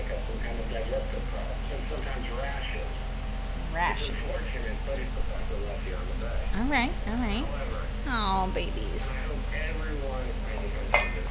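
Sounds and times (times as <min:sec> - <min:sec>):
faint murmuring voices: 0:00.0 - 0:11.2
low hum: 0:00.0 - 0:11.2
speech: 0:04.0 - 0:11.2
glasses clinking in a toast: 0:10.9 - 0:11.2.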